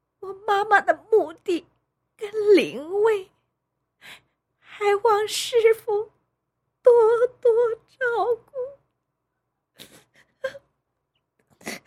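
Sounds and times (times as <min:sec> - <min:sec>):
speech: 0:00.5 - 0:01.7, 0:02.3 - 0:03.3, 0:04.8 - 0:06.2, 0:06.9 - 0:08.8
woman sobbing: 0:09.8 - 0:10.7.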